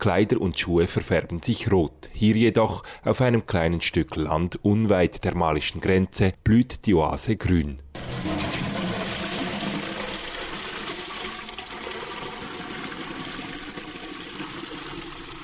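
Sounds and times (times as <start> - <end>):
speech: 0.0 - 8.3
farmer filling a watering can with water in a field: 8.0 - 15.4.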